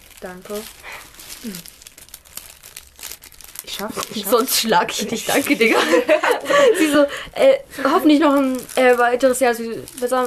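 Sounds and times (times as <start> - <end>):
thin smooth paper being unfolded and crinkled: 0.0 - 7.0, 7.8 - 10.2
speech: 0.2 - 1.8, 3.6 - 10.2
laughter: 5.4 - 7.1.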